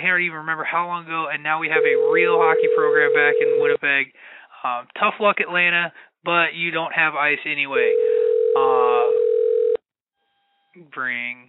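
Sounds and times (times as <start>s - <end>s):
speech: 0.1s - 8.0s, 8.6s - 9.2s, 10.8s - 11.4s
telephone ringing on an outgoing call: 1.7s - 3.8s, 7.8s - 9.8s.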